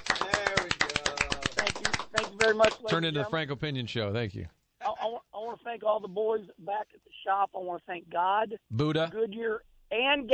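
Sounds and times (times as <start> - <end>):
weak applause: 0.0 - 3.1
speech: 2.4 - 10.3.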